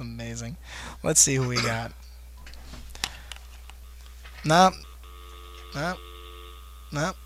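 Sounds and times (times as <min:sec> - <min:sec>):
faint steady hum: 0:00.0 - 0:07.2
speech: 0:00.3 - 0:02.0, 0:04.4 - 0:04.9, 0:05.7 - 0:06.1, 0:06.9 - 0:07.2
studio telephone line call connecting: 0:03.0 - 0:07.2.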